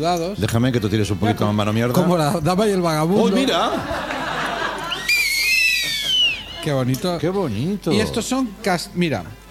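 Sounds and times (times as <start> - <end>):
speech: 0.0 - 4.1, 6.6 - 9.4
laughter: 3.2 - 6.9
two handmade whistles tied together being blown: 4.9 - 6.6.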